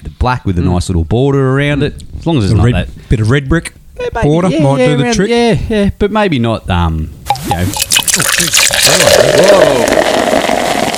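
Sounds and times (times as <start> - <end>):
speech: 0.2 - 10.2
beer pouring into a glass: 7.3 - 10.9.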